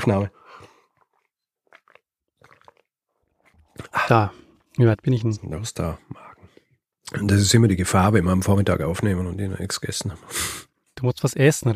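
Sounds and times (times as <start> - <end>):
speech: 0.0 - 0.4, 3.8 - 6.3, 7.1 - 11.7
person sipping and swallowing water: 0.3 - 4.8.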